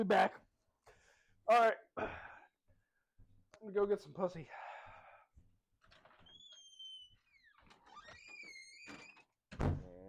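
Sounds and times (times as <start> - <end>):
speech: 0.0 - 0.4, 1.5 - 2.3, 3.6 - 4.7
door squealing and creaking: 6.0 - 10.0
door slamming shut: 8.9 - 10.0.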